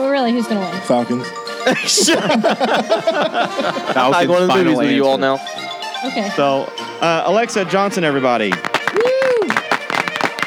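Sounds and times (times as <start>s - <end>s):
laughter: 0.0s - 10.4s
speech: 0.2s - 8.7s
crowd cheering: 1.6s - 10.4s
loud distorted crowd clapping: 8.4s - 10.4s
person whooping: 8.6s - 10.4s.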